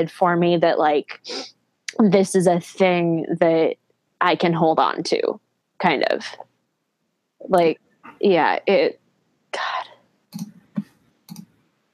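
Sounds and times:
speech: 0.0s - 6.5s, 7.4s - 10.6s
clicking on a computer: 10.3s - 11.5s.

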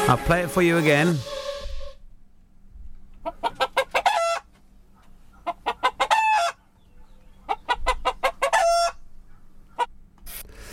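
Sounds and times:
speech: 0.1s - 1.3s
chicken or hen clucking: 3.1s - 9.9s.

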